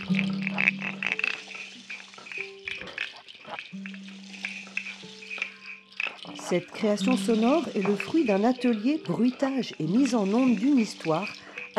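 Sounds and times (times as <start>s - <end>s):
foley water lapping: 0.0s - 11.7s
sustained low hum-like drone: 0.0s - 11.7s
wet crackling foley scratches: 0.0s - 11.7s
speech: 6.5s - 11.7s.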